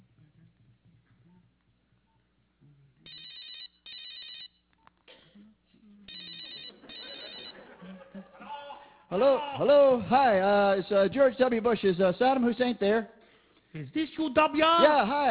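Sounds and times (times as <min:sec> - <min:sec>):
telephone ringing as an outgoing call over a line: 0:03.1 - 0:04.6, 0:06.1 - 0:07.8
laughter: 0:06.6 - 0:10.0
speech: 0:09.1 - 0:15.2.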